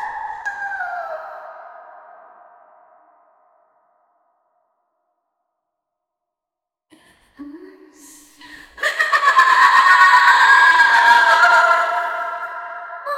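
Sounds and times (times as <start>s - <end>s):
sinister female deity laugh: 8.6s - 12.4s.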